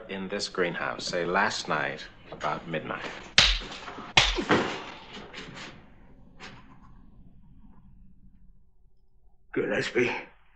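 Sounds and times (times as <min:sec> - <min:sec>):
low hum: 0:00.0 - 0:10.5
speech: 0:00.2 - 0:03.4, 0:04.4 - 0:04.8, 0:09.8 - 0:10.3
sharp loud slap across the face: 0:03.4 - 0:05.5.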